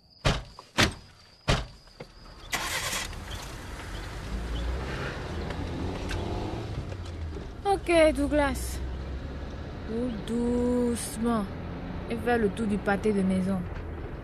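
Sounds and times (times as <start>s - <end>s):
car doors thumping shut: 0.2s - 1.8s
car engine cranking and rumbling: 2.1s - 14.2s
speech: 7.9s - 8.8s, 9.9s - 13.7s.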